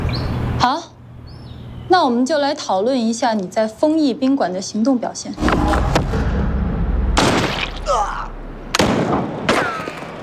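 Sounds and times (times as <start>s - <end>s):
speech: 2.0s - 5.9s
low rumble: 5.4s - 9.4s
heavier sniper rifle crack: 8.7s - 9.6s
pistol shot: 8.8s - 9.6s.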